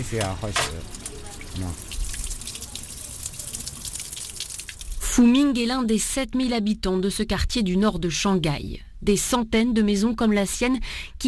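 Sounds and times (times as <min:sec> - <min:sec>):
speech: 0:00.0 - 0:01.0, 0:01.6 - 0:01.9, 0:05.2 - 0:11.2
tap water running into a washbasin mixing cold and hot: 0:00.0 - 0:05.2.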